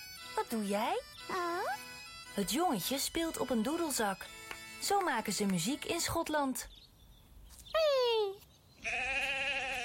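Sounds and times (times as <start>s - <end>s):
speech: 0.4s - 1.6s, 2.4s - 6.9s
sheep bleating: 8.8s - 9.8s.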